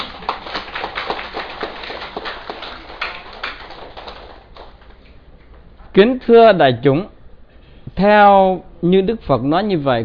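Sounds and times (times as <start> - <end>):
audience of Buddhist followers applauding at a dharma talk: 0.0 - 4.8
speech: 6.0 - 7.1, 8.0 - 10.0.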